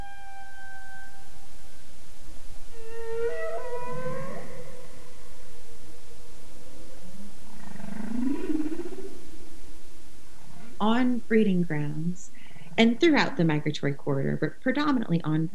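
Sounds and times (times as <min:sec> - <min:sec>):
male whale singing: 0:00.0 - 0:01.8, 0:02.7 - 0:05.4, 0:07.5 - 0:09.3
speech: 0:11.0 - 0:15.5.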